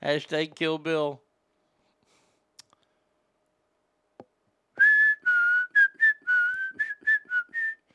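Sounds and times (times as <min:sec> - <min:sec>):
speech: 0:00.0 - 0:01.2
person whistling a tune: 0:04.8 - 0:07.9.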